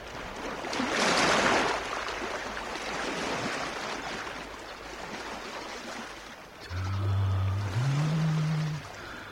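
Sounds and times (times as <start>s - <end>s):
gentle waves on a calm crystal-clear sea: 0.0s - 9.3s
low tonal hum: 6.6s - 9.3s.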